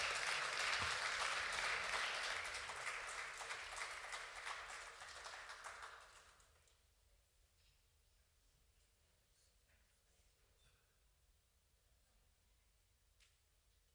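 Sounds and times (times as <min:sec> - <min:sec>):
audience applause: 0:00.0 - 0:06.4.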